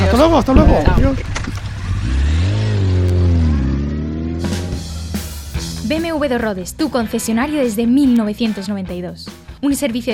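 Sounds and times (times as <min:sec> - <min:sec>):
motorcycle engine revving and accelerating: 0:00.0 - 0:07.6
speech: 0:00.1 - 0:02.3, 0:05.9 - 0:10.1.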